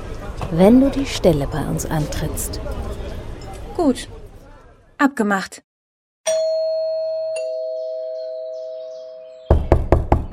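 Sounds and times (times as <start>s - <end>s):
speech: 0.5s - 3.0s, 3.8s - 4.2s, 5.0s - 5.6s
two-tone doorbell chime: 6.3s - 9.5s
firm knocking on a door: 9.5s - 10.3s.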